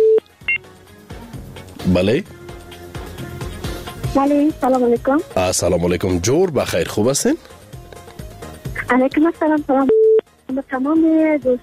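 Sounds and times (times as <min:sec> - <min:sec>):
electronic phone dial beeps as a call is connected: 0:00.0 - 0:00.6, 0:09.9 - 0:10.2
speech: 0:01.9 - 0:02.4, 0:04.1 - 0:07.6, 0:08.9 - 0:10.0, 0:10.6 - 0:11.6.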